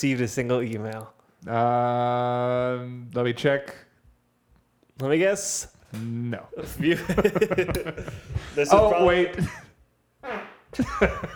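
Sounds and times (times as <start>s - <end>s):
speech: 0.0s - 3.8s, 5.0s - 9.6s, 10.2s - 11.3s
laughter: 6.6s - 9.7s, 10.8s - 11.3s
fart: 10.2s - 10.8s.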